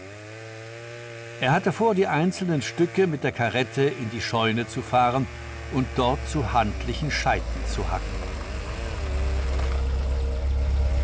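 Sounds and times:
speech: 1.4s - 8.2s
gendarmerie police car engine idling on the street: 5.4s - 11.0s.

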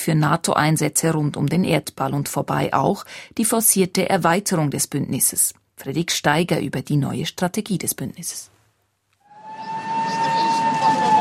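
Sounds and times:
speech: 0.0s - 8.6s
siren wailing at a street protest: 9.3s - 11.1s.

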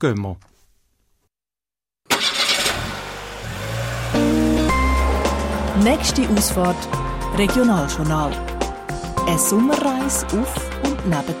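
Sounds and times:
speech: 0.0s - 0.5s, 5.8s - 8.5s, 9.3s - 11.3s
Audi engine starting in a traffic jam at the Gubrisch Tunnel near Zurich: 2.1s - 8.8s.

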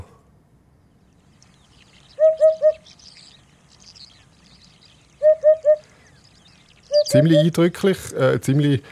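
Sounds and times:
faint birdsong: 0.0s - 8.9s
Eurasian hoopoe calling in soft hollow hoots: 5.2s - 6.0s, 6.9s - 7.6s
speech: 7.1s - 8.9s.

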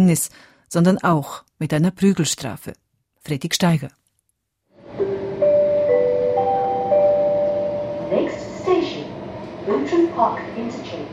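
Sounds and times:
speech: 0.0s - 4.0s, 9.8s - 11.1s
subway train running with electric whine: 4.8s - 11.1s.

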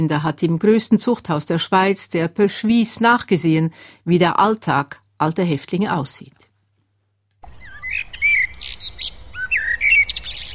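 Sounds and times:
speech: 0.0s - 6.5s
birds singing and chirping outdoors: 7.5s - 10.5s.

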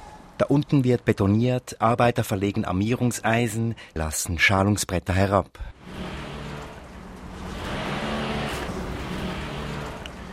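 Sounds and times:
speech: 0.4s - 6.2s
roar of traffic from a distant motorway: 5.7s - 10.3s.

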